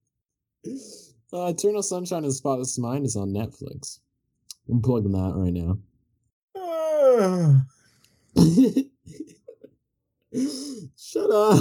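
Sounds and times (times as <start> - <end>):
speech: 0.6 - 4.0, 4.7 - 5.9, 7.2 - 7.8, 8.4 - 9.4, 10.3 - 11.5
person fake yawning: 6.6 - 7.8, 10.4 - 11.5.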